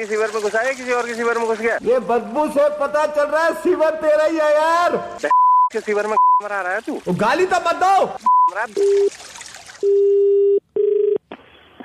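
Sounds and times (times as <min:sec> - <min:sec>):
speech: 0:00.0 - 0:10.2
telephone dialing tones of a call being placed: 0:09.8 - 0:11.2.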